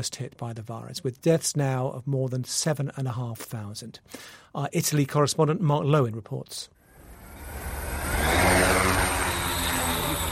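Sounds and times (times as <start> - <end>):
speech: 0.0 - 6.8
police drone motor whirring overhead above streets: 6.9 - 10.3.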